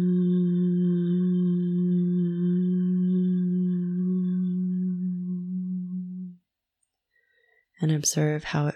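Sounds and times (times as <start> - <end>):
person chanting a sustained hum with closed lips: 0.0 - 6.5
deep breath: 7.1 - 7.7
speech: 7.8 - 8.7.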